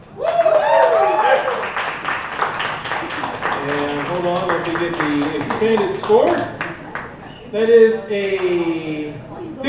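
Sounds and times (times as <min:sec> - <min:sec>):
people cheering and whooping: 0:00.1 - 0:01.8
crowd applauding a poet: 0:00.2 - 0:07.2
speech: 0:04.8 - 0:06.5, 0:07.5 - 0:09.6.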